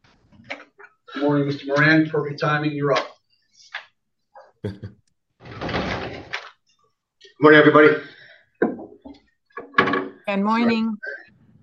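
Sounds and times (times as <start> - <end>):
speech: 1.2 - 3.1, 4.6 - 5.0, 7.4 - 8.1, 10.3 - 11.2
knocking thunks of a door: 5.4 - 6.4
door opening with a short creak: 5.4 - 6.6.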